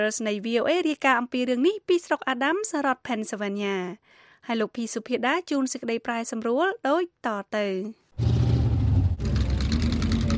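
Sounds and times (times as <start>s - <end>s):
speech: 0.0s - 8.3s
vintage racing car engines roaring at a fairground in Adams County, Pennsylvania: 8.2s - 10.3s.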